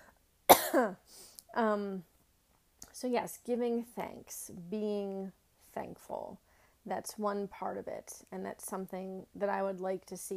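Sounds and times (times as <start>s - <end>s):
person coughing: 0.5s - 1.0s
speech: 0.8s - 2.1s, 3.0s - 10.3s.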